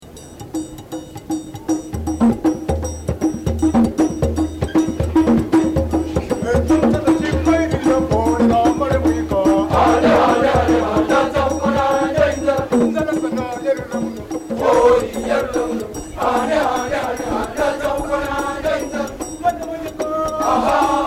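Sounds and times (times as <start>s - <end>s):
chorus singing in traditional music from Kenya: 2.4s - 21.0s.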